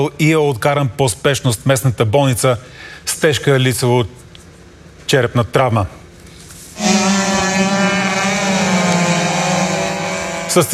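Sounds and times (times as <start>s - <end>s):
speech: 0.0s - 4.2s, 5.1s - 6.0s, 10.6s - 10.7s
racing powerboat engine roaring on the Danube River near Lom, Bulgaria: 6.8s - 10.7s.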